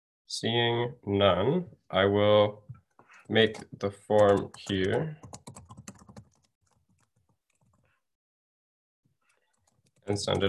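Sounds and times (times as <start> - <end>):
speech: 0.3 - 5.4, 10.1 - 10.4
typing on a computer keyboard: 4.1 - 7.9, 9.3 - 10.4.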